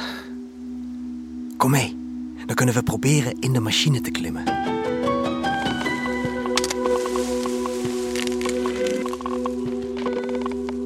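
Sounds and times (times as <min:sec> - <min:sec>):
speech: 0:01.6 - 0:04.8
orange cocoons splitting open with squelching and cracking: 0:05.8 - 0:10.8.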